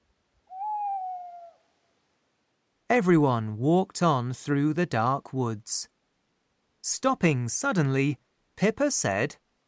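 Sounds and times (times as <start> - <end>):
owl hooting: 0.4 - 1.9
speech: 2.9 - 5.9, 6.8 - 9.4.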